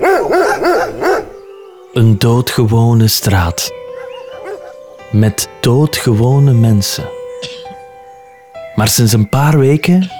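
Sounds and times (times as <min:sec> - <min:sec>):
dog barking: 0:00.0 - 0:01.4, 0:03.8 - 0:04.8
speech: 0:02.0 - 0:03.8, 0:05.1 - 0:07.6, 0:08.8 - 0:10.1.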